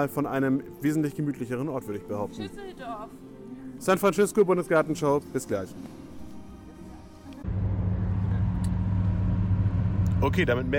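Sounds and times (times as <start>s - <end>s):
speech: 0.0s - 6.0s, 10.2s - 10.7s
road noise from inside a moving car: 7.2s - 10.7s
car engine rumble inside a moving car: 7.4s - 10.7s.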